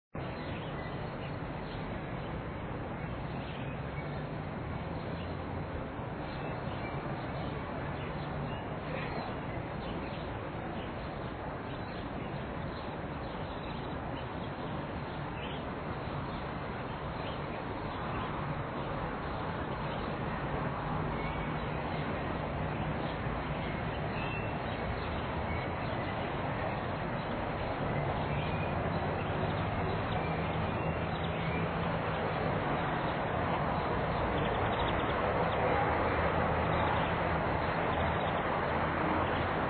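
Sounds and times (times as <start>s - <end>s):
birds in a square: 0.2s - 39.6s.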